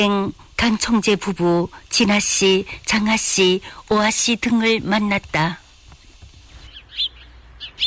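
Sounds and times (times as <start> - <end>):
speech: 0.0 - 5.6
birds chirping outside a temple: 6.0 - 7.8.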